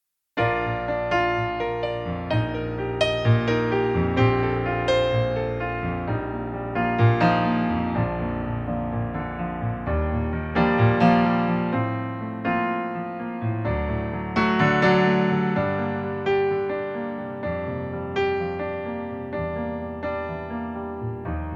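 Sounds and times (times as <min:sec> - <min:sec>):
piano playback in B-flat major: 0:00.4 - 0:21.5.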